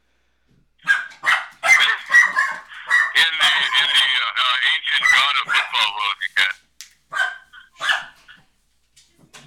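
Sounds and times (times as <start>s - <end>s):
dog barking excitedly with yelping cries: 0.8s - 4.1s, 4.9s - 6.5s, 7.1s - 8.4s
speech: 5.0s - 6.4s.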